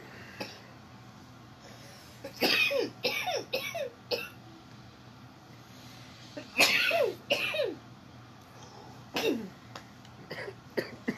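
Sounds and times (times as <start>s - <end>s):
person coughing and choking on cake: 2.3s - 4.4s, 6.5s - 7.8s, 9.2s - 9.5s, 10.3s - 11.1s.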